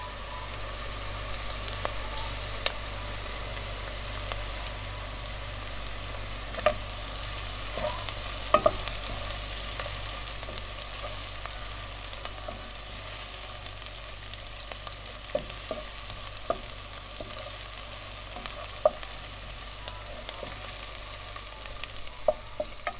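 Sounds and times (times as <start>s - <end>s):
soffritto of herbs onion and garlic frying in olive oil: 0.0s - 22.9s
spoon clinking and scraping while stirring the pan: 6.5s - 22.9s.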